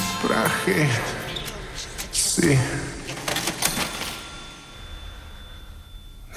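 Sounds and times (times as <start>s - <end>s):
speech: 0.2s - 1.2s, 2.4s - 2.9s
cash register bright ringing chime: 0.2s - 6.3s
cash register mechanical clattering: 1.3s - 5.1s.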